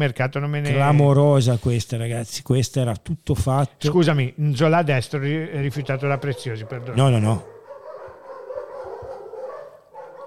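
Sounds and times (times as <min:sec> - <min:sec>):
speech: 0:00.0 - 0:07.5
pack of dogs barking and yelping: 0:05.8 - 0:10.2.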